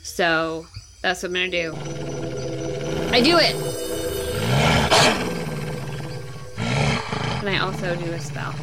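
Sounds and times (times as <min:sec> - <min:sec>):
speech: 0:00.2 - 0:02.2, 0:03.1 - 0:03.7, 0:07.4 - 0:08.6
wolf roar: 0:01.7 - 0:08.6.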